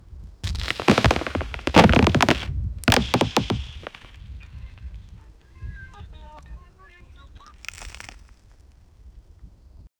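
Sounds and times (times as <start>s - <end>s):
loud cracking of tree wood: 0.4s - 4.1s.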